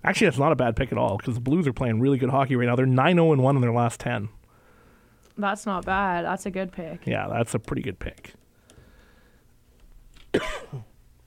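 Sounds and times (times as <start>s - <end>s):
speech: 0.1s - 4.4s, 5.4s - 8.4s, 10.3s - 10.9s
person coughing: 10.3s - 10.9s.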